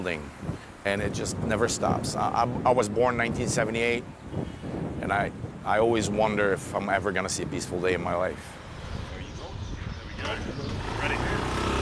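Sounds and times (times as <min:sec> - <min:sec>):
speech: 0:00.0 - 0:08.6, 0:10.2 - 0:11.3
wind: 0:00.0 - 0:11.8
traffic noise: 0:07.6 - 0:11.8
motorbike engine rumbling while riding through streets in Lebanon: 0:08.4 - 0:11.8.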